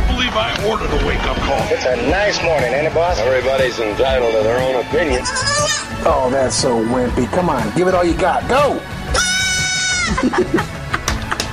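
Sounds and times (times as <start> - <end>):
speech: 0.4 - 9.2, 10.2 - 10.8
goat bleating: 5.1 - 6.0, 9.1 - 10.1
laughter: 9.7 - 11.5.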